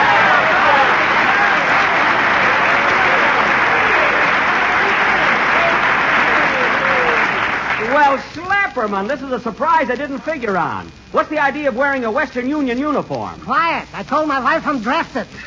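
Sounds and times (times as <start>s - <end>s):
audience applause at a birthday celebration: 0.0s - 8.4s
speech: 8.8s - 15.4s.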